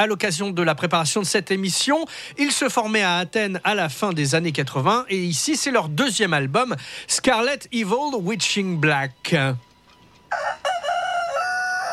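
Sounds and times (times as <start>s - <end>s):
speech: 0.0s - 9.7s
rooster crowing: 10.3s - 11.9s.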